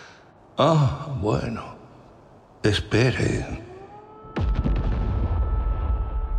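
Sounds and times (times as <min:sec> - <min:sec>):
speech: 0:00.6 - 0:01.8, 0:02.6 - 0:03.7
bombs exploding during a bombardment: 0:04.4 - 0:06.3.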